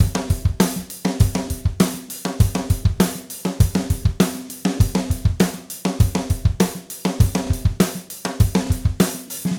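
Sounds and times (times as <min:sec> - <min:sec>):
1967 Gretsch drum kit groove: 0:00.0 - 0:09.5.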